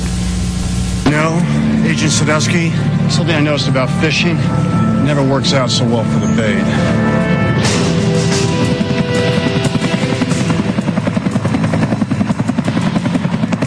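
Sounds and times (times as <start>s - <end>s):
helicopter rotor chopping overhead with engine whine: 0.0s - 13.6s
speech: 1.1s - 7.7s.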